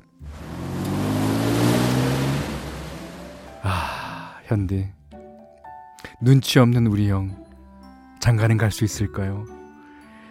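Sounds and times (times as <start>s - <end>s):
bus engine pulling away: 0.0s - 4.3s
speech: 4.5s - 5.0s, 6.2s - 7.4s, 8.2s - 9.6s.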